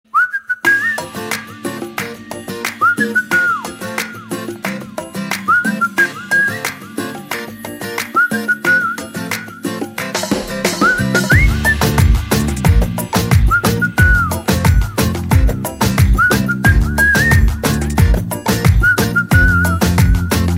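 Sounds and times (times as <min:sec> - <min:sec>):
whistle background music: 0:00.1 - 0:04.5, 0:05.2 - 0:20.5.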